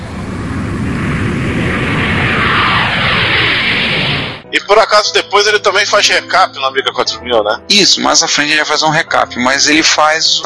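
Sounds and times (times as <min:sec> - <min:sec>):
jet roar: 0:00.0 - 0:04.5
speech: 0:04.7 - 0:10.4.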